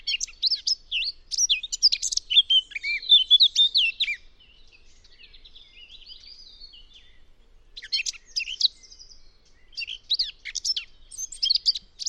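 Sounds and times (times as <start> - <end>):
Eurasian blackcap warbling song with squeaky and fluty notes: 0.0 - 12.0.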